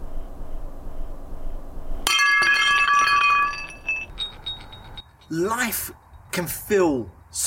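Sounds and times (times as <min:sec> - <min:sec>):
ceramic cup shattering on the floor: 0:02.1 - 0:05.0
ceramic shards ringing and tinkling: 0:02.1 - 0:05.6
speech: 0:05.3 - 0:07.4.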